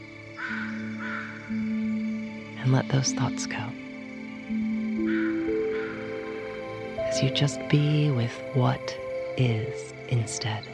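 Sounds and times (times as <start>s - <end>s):
steady low tone: 0.0s - 10.7s
crow cawing in a forest: 0.3s - 1.9s, 5.0s - 6.6s
speech: 2.6s - 3.8s, 7.2s - 10.7s.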